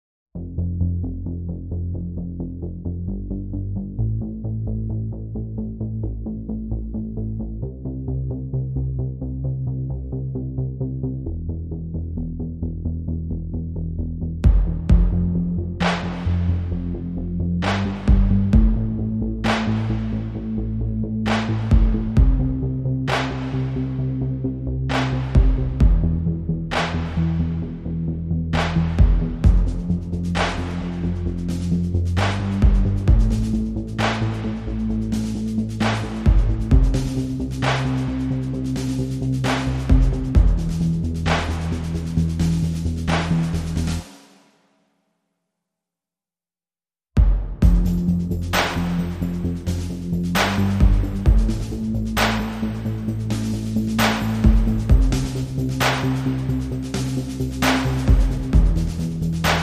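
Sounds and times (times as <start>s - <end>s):
bass: 0.3s - 44.2s, 47.2s - 59.6s
drums: 14.4s - 16.6s, 17.6s - 20.2s, 21.3s - 23.8s, 24.9s - 27.6s, 28.6s - 44.5s, 47.2s - 59.6s.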